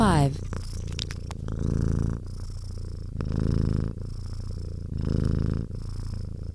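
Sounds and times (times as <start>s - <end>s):
cat purring: 0.0s - 6.5s
faint clicks: 0.4s - 1.5s.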